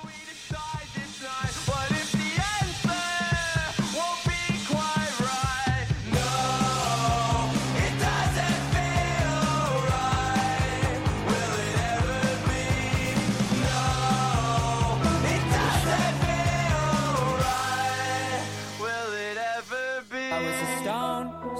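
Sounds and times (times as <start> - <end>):
rock song playing on FM radio: 0.0 - 21.5.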